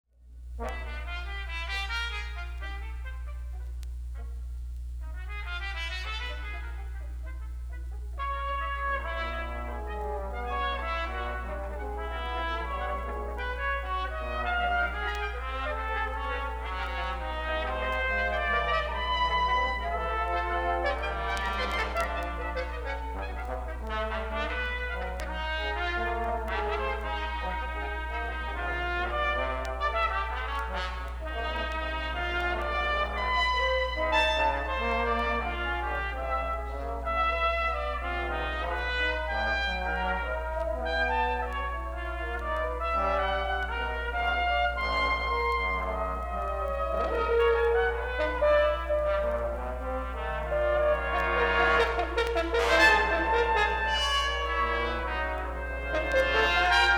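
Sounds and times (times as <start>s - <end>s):
brass quintet playing: 0.2s - 56.9s.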